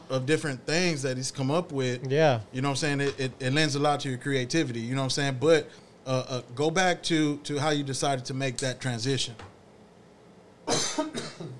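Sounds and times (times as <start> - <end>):
speech: 0.1 - 9.5
person coughing: 10.7 - 11.5.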